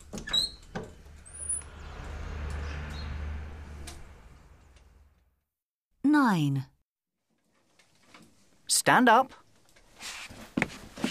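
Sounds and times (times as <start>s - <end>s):
window squeaking: 0.0s - 1.7s
low sliding rumble of a window: 0.0s - 5.4s
speech: 6.2s - 6.7s, 8.8s - 9.4s.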